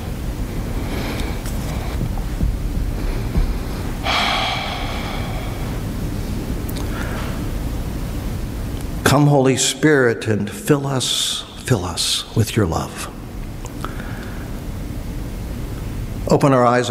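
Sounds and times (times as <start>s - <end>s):
constant low rushing noise: 0.0s - 9.1s
deep breathing in and out during a guided prayer breathing exercise: 0.4s - 7.6s, 13.8s - 14.7s
speech: 9.1s - 13.2s, 16.3s - 16.9s.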